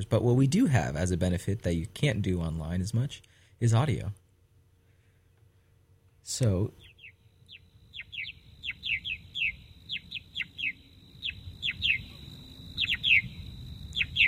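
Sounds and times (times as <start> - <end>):
speech: 0.0 - 4.2, 6.2 - 6.8
purple martin alarm calls: 6.8 - 14.2.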